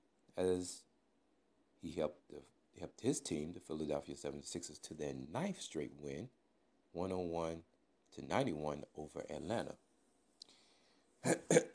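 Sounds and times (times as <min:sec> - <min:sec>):
speech: 0:00.4 - 0:00.9, 0:01.8 - 0:09.8, 0:11.2 - 0:11.7
faint click: 0:10.4 - 0:10.6
throat clearing: 0:11.2 - 0:11.7.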